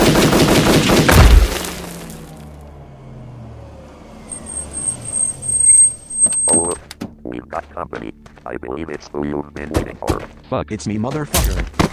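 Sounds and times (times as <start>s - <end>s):
machine gun firing: 0.0s - 1.6s
speech: 7.5s - 11.9s.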